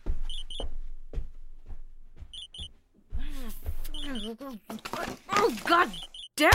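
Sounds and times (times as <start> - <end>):
alarm clock beeping in quick double bursts: 0.3 - 0.6, 2.3 - 2.7, 3.9 - 4.3, 5.9 - 6.3
speech: 4.3 - 6.5.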